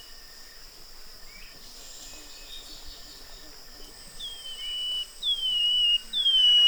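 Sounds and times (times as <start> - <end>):
Brown-headed greenlet whistling: 4.9 - 6.6.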